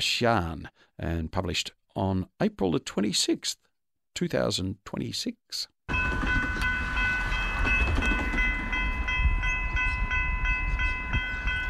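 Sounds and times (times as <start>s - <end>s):
speech: 0.0s - 6.3s
train rumbling along the rails: 5.9s - 11.6s.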